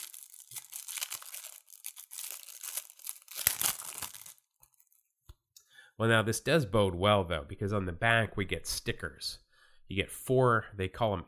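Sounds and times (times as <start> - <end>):
plastic wrapper of a rack pack of baseball trading cards tearing and crinkling: 0.0 - 5.1
speech: 6.0 - 11.2.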